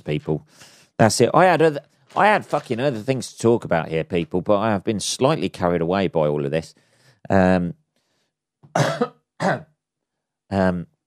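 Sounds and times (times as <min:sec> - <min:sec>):
speech: 0:00.0 - 0:07.8, 0:08.7 - 0:09.7, 0:10.5 - 0:10.9
person coughing: 0:08.7 - 0:09.7.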